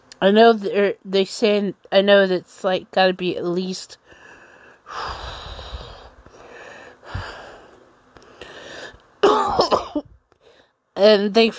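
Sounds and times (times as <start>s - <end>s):
speech: 0.2s - 4.2s, 4.9s - 5.5s, 11.0s - 11.5s
person coughing: 9.2s - 10.1s.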